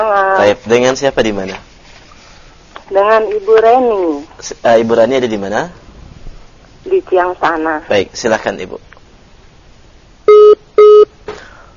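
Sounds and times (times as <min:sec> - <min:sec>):
speech: 0:00.0 - 0:01.7, 0:02.9 - 0:05.8, 0:06.8 - 0:08.9
telephone line beeps as a call cuts off: 0:10.3 - 0:11.1.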